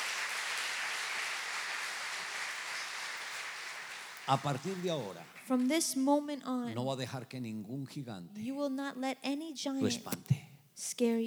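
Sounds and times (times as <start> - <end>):
large crowd applauding: 0.0 - 5.7
speech: 4.3 - 11.2.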